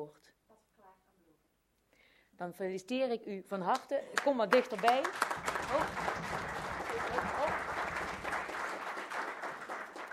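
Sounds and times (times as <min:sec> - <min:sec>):
speech: 0:02.4 - 0:06.4
sparse applause from a small group in a council chamber: 0:04.5 - 0:10.1.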